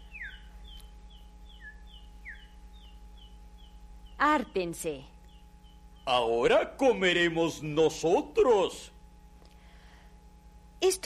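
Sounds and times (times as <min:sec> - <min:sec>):
chick peeping while being given rice: 0:00.0 - 0:04.5
steady low electrical hum: 0:00.0 - 0:11.0
speech: 0:04.2 - 0:05.1, 0:06.1 - 0:08.9, 0:10.8 - 0:11.0.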